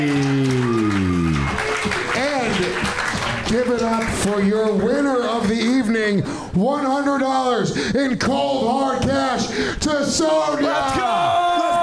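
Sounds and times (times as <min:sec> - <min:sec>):
audience whooping and cheering: 0:00.0 - 0:03.4
loud audience applause: 0:00.0 - 0:05.1
speech: 0:03.5 - 0:11.4.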